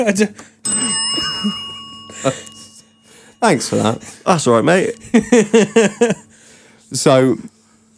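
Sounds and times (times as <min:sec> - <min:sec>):
speech: 0:00.0 - 0:00.6, 0:01.4 - 0:01.6, 0:02.2 - 0:02.5, 0:03.4 - 0:06.2, 0:06.9 - 0:07.6
single bell struck and ringing: 0:00.6 - 0:06.4
laughter: 0:05.0 - 0:06.3.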